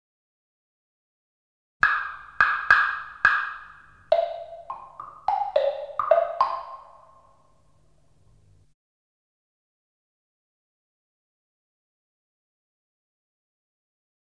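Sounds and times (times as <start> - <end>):
Chinese wood block percussion: 1.8 - 7.6.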